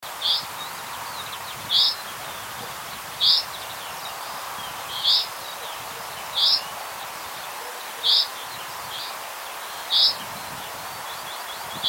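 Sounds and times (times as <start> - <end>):
background hiss: 0.0 - 11.8
common chaffinch Fringilla coelebs calling: 0.2 - 6.7, 7.6 - 9.2, 9.8 - 10.3, 11.3 - 11.8.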